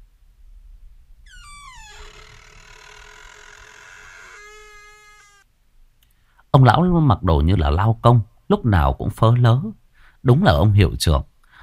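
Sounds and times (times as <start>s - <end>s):
door creaking slowly open: 1.2s - 5.5s
speech: 6.5s - 11.3s.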